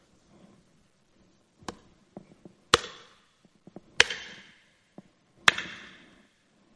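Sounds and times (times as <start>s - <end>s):
heavy hammer blows on nails: 2.7s - 3.2s, 4.0s - 4.7s, 5.5s - 6.2s.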